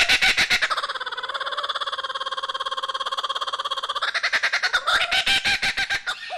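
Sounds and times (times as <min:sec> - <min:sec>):
kookaburra laughing: 0:00.0 - 0:06.3.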